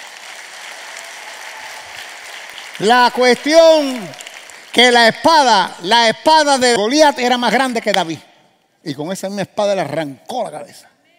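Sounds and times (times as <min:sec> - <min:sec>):
audience applauding: 0:00.0 - 0:05.6
speech: 0:02.8 - 0:10.9.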